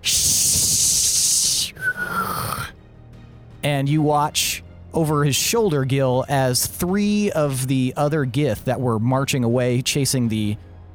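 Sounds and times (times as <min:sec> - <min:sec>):
hissing whistle: 0:00.0 - 0:02.7
speech: 0:03.6 - 0:10.7.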